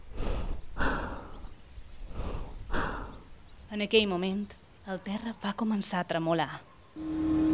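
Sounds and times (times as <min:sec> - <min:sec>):
woman breathing rapidly and heavily: 0:00.0 - 0:03.5
speech: 0:03.8 - 0:07.4.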